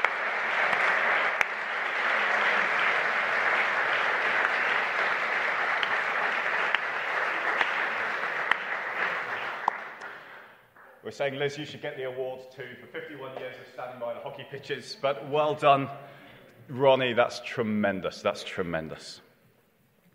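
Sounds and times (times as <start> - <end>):
sizable audience applauding in a church: 0.0 - 10.6
speech: 11.1 - 16.1, 16.7 - 19.2.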